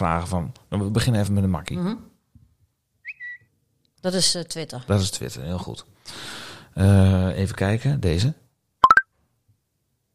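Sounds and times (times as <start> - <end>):
speech: 0.0 - 2.1, 4.0 - 8.4
Snapchat phone app notification of bright electronic blips rising in pitch: 8.8 - 9.0.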